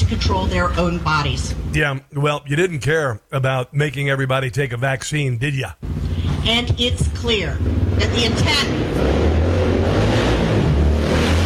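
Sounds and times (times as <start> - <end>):
motorcycle engine with deep rumbling roar: 0.0 - 2.7, 4.5 - 11.4
speech: 0.1 - 9.2.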